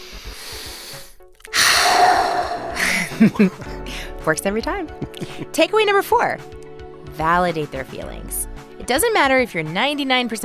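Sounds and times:
slow deep belly breathing: 0:00.0 - 0:04.1
speech: 0:03.2 - 0:06.6, 0:07.2 - 0:10.4.

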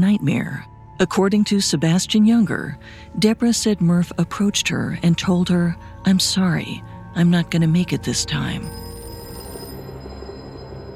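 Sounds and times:
speech: 0:00.0 - 0:08.8
telephone ringing with a warbling electronic tone: 0:08.6 - 0:10.9.

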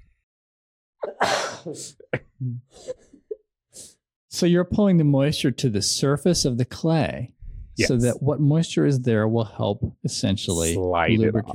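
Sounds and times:
loud forceful sneeze: 0:01.0 - 0:02.0
short voiced sounds and breaths after sneeze: 0:01.0 - 0:03.0, 0:07.4 - 0:08.3, 0:10.4 - 0:11.5
speech: 0:01.2 - 0:03.2, 0:03.8 - 0:11.5.

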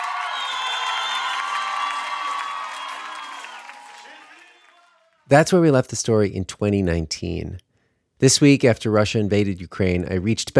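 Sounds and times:
comedy show crowd cheering and screaming: 0:00.0 - 0:05.0
speech: 0:05.3 - 0:07.6, 0:08.2 - 0:10.5.

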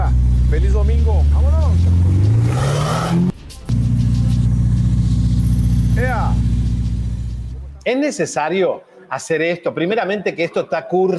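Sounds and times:
Ferrari sports car engine revving: 0:00.0 - 0:07.8
speech: 0:00.5 - 0:03.3, 0:07.9 - 0:11.1.

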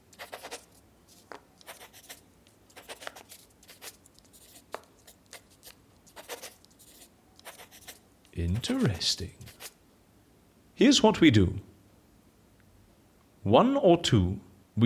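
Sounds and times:
pen scratching across paper: 0:00.0 - 0:09.8
speech: 0:08.4 - 0:09.4, 0:10.8 - 0:11.7, 0:13.5 - 0:14.8.

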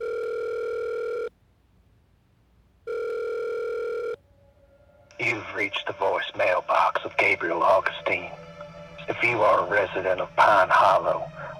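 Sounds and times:
telephone ringback tones on speakerphone: 0:00.0 - 0:01.3, 0:02.9 - 0:04.2
speech: 0:05.3 - 0:08.4, 0:09.1 - 0:11.4.

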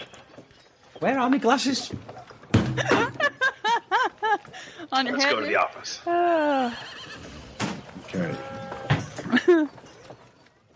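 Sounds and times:
hooves knocking: 0:00.0 - 0:10.7
speech: 0:01.0 - 0:03.2, 0:04.9 - 0:07.0, 0:08.1 - 0:08.6
laughter: 0:02.8 - 0:04.8, 0:09.3 - 0:09.7
horse whinnying: 0:06.4 - 0:09.3.

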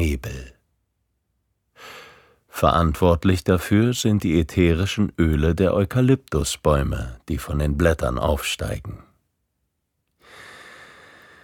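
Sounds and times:
deep breath drawn in through the nose: 0:01.8 - 0:02.4, 0:10.2 - 0:11.4
speech: 0:02.6 - 0:09.1.

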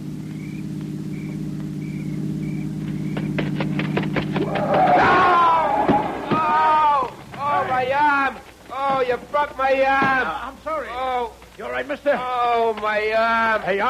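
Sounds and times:
faint beeping tones: 0:00.0 - 0:03.4
car engine humming: 0:00.0 - 0:13.8
sharp clicks and thuds: 0:00.2 - 0:07.8, 0:08.4 - 0:10.4
excited voices talking: 0:04.4 - 0:13.8
speech: 0:09.4 - 0:13.8.

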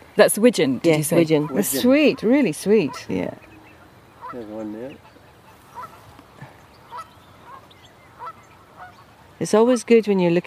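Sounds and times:
speech: 0:00.2 - 0:03.5, 0:04.3 - 0:05.1, 0:09.4 - 0:10.4
geese honking: 0:00.4 - 0:10.4.

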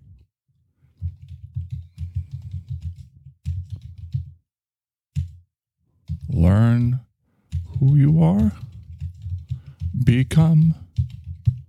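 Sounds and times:
rapid typing on a computer keyboard: 0:01.0 - 0:04.4, 0:06.0 - 0:06.6, 0:07.5 - 0:11.6
speech: 0:06.3 - 0:07.0, 0:07.8 - 0:08.6, 0:10.1 - 0:10.8.

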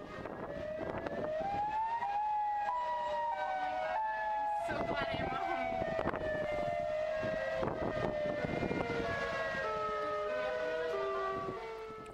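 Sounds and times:
tornado warning siren wailing across a city: 0:00.0 - 0:12.1.

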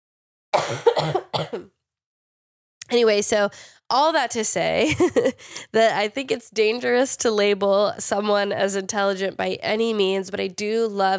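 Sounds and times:
person coughing after getting heated while talking: 0:00.6 - 0:01.7
speech: 0:00.7 - 0:01.8, 0:02.9 - 0:11.1.

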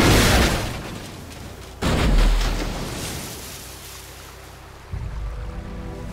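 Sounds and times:
rushing churning canal water: 0:00.0 - 0:06.1
car crashing into a canal at Ras El Bar on the Nile: 0:01.8 - 0:04.7.

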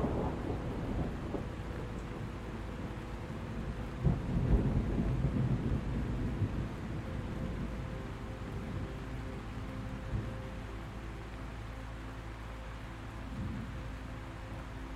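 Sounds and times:
thunder rumbling low and deep: 0:00.0 - 0:10.8, 0:13.3 - 0:14.0
steady hiss of falling rain: 0:00.0 - 0:14.9.

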